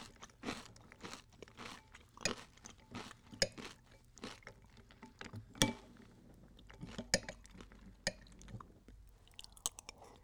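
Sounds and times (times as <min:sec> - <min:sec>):
cereal being eaten with sharp bright crunches: 0:00.0 - 0:04.6
soft chewing: 0:00.0 - 0:10.2.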